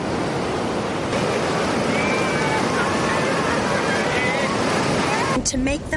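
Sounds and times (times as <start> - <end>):
gentle ocean waves washing against the shore: 0.0 - 5.9
faint voices: 1.7 - 5.6.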